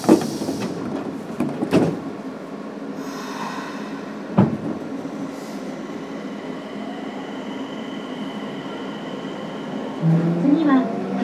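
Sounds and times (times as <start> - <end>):
train hiss as the train begins to move: 0.0 - 0.9, 3.0 - 4.3
train doors sliding shut: 0.0 - 5.7
steady train carriage rumble: 0.0 - 11.2.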